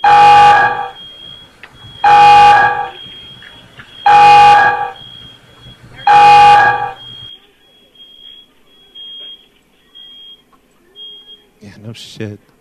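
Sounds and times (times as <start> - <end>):
kitchen fryer alarm buzzing: 0.0 - 11.6
speech: 12.0 - 12.5.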